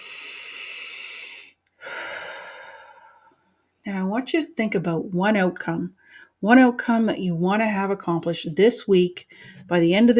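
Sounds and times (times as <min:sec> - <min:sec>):
slow deep breath during a guided relaxation: 0:00.0 - 0:03.6, 0:06.0 - 0:06.4, 0:09.3 - 0:09.7
speech: 0:03.9 - 0:10.1.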